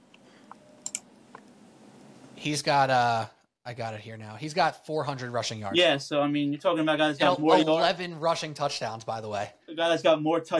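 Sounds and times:
computer clicks: 0.1s - 1.5s
speech: 2.4s - 10.5s.

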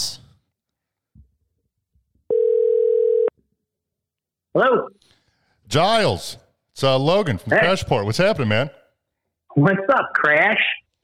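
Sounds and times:
telephone ringing tone: 2.3s - 3.3s
speech: 4.6s - 5.1s, 5.7s - 8.8s, 9.5s - 10.8s.

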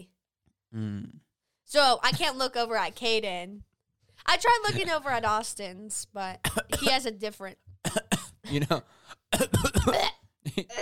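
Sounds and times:
speech: 0.7s - 10.7s
person coughing: 6.4s - 7.0s, 7.9s - 10.7s.

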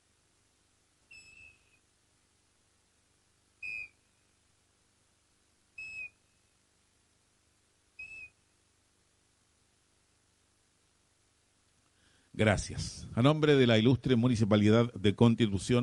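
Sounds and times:
commemorative whistle blasts: 1.1s - 1.8s, 3.6s - 4.0s, 5.8s - 6.2s, 8.0s - 8.4s
speech: 12.4s - 15.8s.

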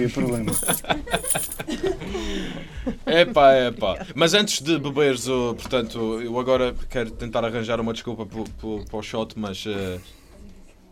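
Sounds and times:
set of keys jangling as handed over: 0.0s - 1.6s
speech: 0.0s - 10.2s.

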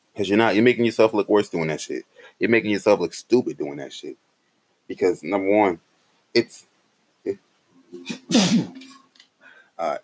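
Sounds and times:
speech: 0.2s - 4.2s, 4.9s - 8.9s, 9.8s - 10.0s
loud explosive sneeze: 8.1s - 8.8s.

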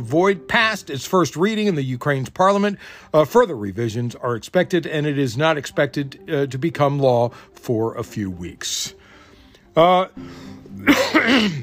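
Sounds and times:
speech: 0.0s - 9.0s, 9.8s - 11.6s
person coughing after choking on coffee: 10.8s - 11.6s.

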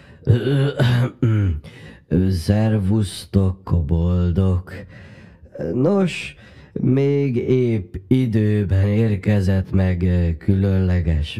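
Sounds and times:
person clearing throat as a storytelling sound effect: 0.2s - 1.6s
speech: 0.3s - 1.2s, 2.4s - 11.3s.

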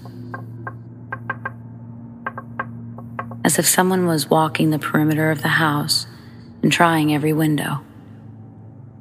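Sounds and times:
steady low electrical hum: 0.0s - 9.0s
light knocks on a door: 0.2s - 1.6s, 2.2s - 3.5s
speech: 3.6s - 7.9s.

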